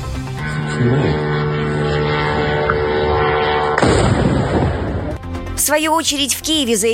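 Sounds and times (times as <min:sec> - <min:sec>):
crackling rumble of drone breaking apart: 0:00.0 - 0:05.4
drone engine humming overhead: 0:00.0 - 0:05.6
sharp blast of drone being shot down: 0:00.3 - 0:05.2
speech: 0:00.8 - 0:01.2, 0:05.7 - 0:06.9.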